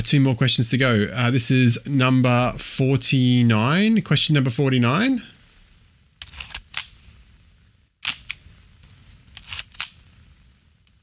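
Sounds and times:
speech: 0:00.0 - 0:05.3
35mm film camera shutter exposing one frame: 0:09.4 - 0:10.0.

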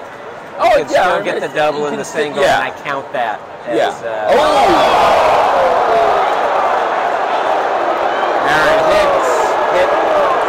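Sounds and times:
speech: 0:00.6 - 0:05.8, 0:08.5 - 0:09.1
large baseball stadium crowd booing after a batter is hit by a pitch: 0:04.3 - 0:10.4.

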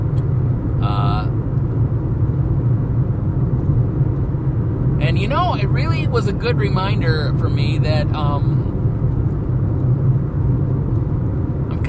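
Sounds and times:
engine and road noise rumble inside a car while driving: 0:00.0 - 0:11.8
speech: 0:05.6 - 0:08.7.

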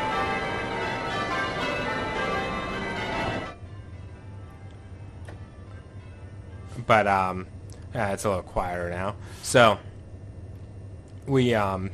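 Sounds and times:
church bells ringing: 0:00.0 - 0:04.7
speech: 0:06.9 - 0:09.9, 0:11.3 - 0:11.9.

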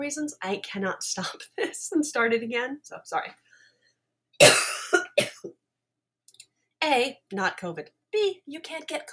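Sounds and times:
speech: 0:00.0 - 0:03.4, 0:04.4 - 0:05.6, 0:06.8 - 0:09.1
coughing: 0:04.4 - 0:05.5.

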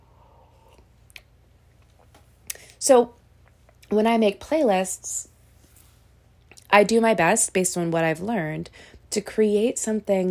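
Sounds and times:
person sipping a drink: 0:00.1 - 0:00.9
speech: 0:02.8 - 0:03.2, 0:03.9 - 0:05.3, 0:06.7 - 0:10.2.

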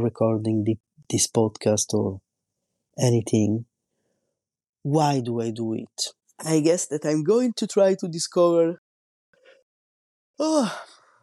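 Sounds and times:
speech: 0:00.0 - 0:02.2, 0:03.0 - 0:03.7, 0:04.8 - 0:08.8, 0:10.4 - 0:11.0
person yawning: 0:10.4 - 0:11.1.

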